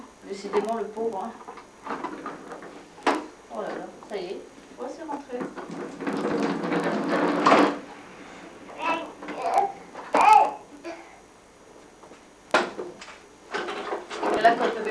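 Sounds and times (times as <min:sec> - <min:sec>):
speech: 0:00.3 - 0:02.6, 0:03.5 - 0:07.7, 0:14.4 - 0:14.8
baby babbling and cooing: 0:08.8 - 0:11.2.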